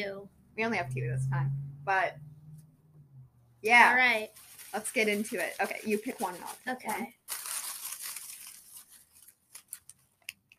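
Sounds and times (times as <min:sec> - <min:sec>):
speech: 0:00.0 - 0:02.3, 0:03.6 - 0:07.5
paper crumpling: 0:04.0 - 0:10.5.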